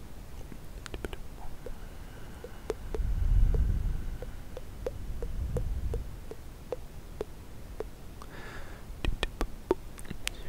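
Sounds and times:
wet mouth clicks and smacks: 0.4s - 8.3s, 9.0s - 10.4s
breathy hiss: 1.0s - 9.0s
low rumbling swells: 1.2s - 8.1s.

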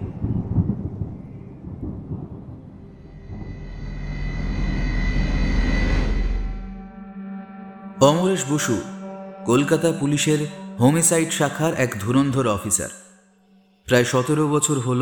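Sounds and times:
deep rolling thunder from a gathering storm on a cold December day: 0.0s - 6.8s
speech: 8.0s - 13.1s, 13.9s - 15.0s.

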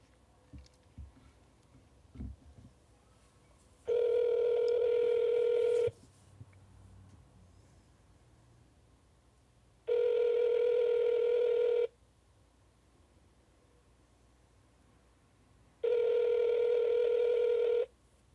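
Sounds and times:
phone ringback tones on an outgoing call: 3.9s - 5.9s, 9.9s - 11.9s, 15.8s - 17.9s.

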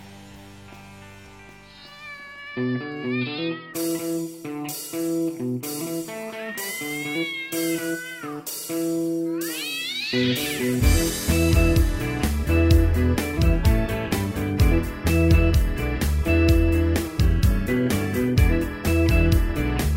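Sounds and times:
cat meowing: 1.7s - 4.2s, 6.2s - 10.8s
speech: 2.6s - 3.9s, 10.1s - 11.2s
rhythmic music track: 2.8s - 19.9s.

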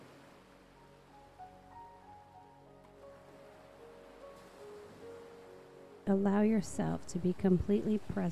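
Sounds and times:
soft steady ocean surf: 0.0s - 7.0s
speech: 6.1s - 8.3s.

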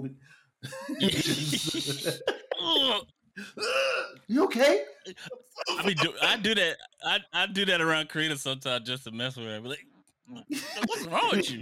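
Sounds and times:
speech: 0.0s - 11.5s
laughter: 0.6s - 3.0s, 5.1s - 7.8s, 10.5s - 11.5s
harsh cough: 0.7s - 3.0s, 5.2s - 6.5s, 10.5s - 11.5s.

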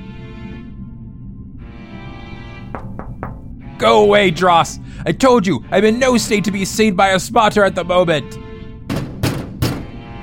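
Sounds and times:
heavy booming knocks on a door: 2.7s - 3.6s, 8.9s - 10.0s
speech: 3.8s - 8.4s.

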